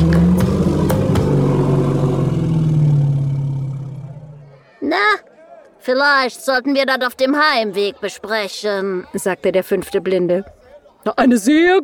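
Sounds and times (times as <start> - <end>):
elephant giving a deep rumbling growl: 0.0 - 4.7
speech: 5.8 - 11.8.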